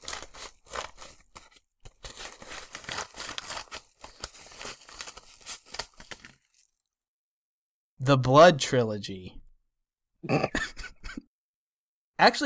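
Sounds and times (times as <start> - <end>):
gift wrapping paper crackling and tearing: 0.0 - 6.8
speech: 8.0 - 9.4, 10.2 - 10.6, 12.2 - 12.4.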